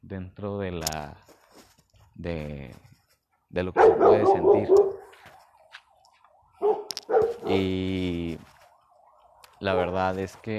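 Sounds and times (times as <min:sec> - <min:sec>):
speech: 0:00.1 - 0:01.4, 0:02.2 - 0:02.9, 0:03.5 - 0:05.0, 0:07.5 - 0:08.2, 0:09.6 - 0:10.5
dog barking in short loud bursts: 0:03.7 - 0:05.1, 0:06.6 - 0:07.6.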